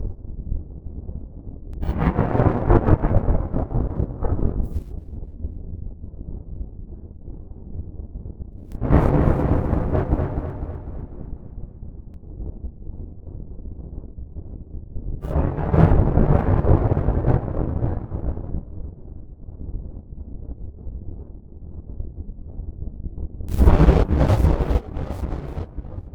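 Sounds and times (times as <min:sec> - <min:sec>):
thunder: 0:01.8 - 0:04.8, 0:08.8 - 0:11.8, 0:15.2 - 0:18.7, 0:23.5 - 0:26.1.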